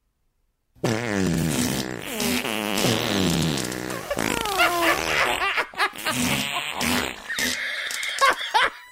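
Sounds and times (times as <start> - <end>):
synthetic fart noises from a phone app playing on a phone speaker: 0.8 - 8.2
laughter: 3.9 - 6.6, 7.5 - 8.9.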